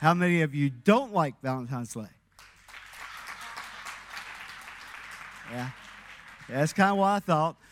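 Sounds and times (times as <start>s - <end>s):
speech: 0.0s - 2.2s, 5.5s - 5.8s, 6.5s - 7.7s
audience clapping hands in response to poll: 2.3s - 7.4s.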